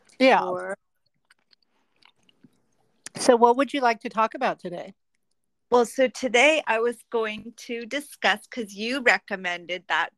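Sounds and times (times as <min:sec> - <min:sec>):
chewing apricots: 0:00.0 - 0:03.1
speech: 0:00.2 - 0:00.8, 0:03.2 - 0:05.0, 0:05.7 - 0:10.1.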